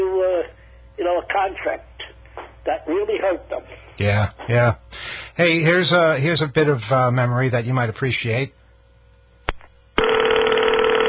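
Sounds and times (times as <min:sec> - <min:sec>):
speech: 0:01.2 - 0:08.6
old-fashioned telephone bell from Canada ringing: 0:10.0 - 0:11.0.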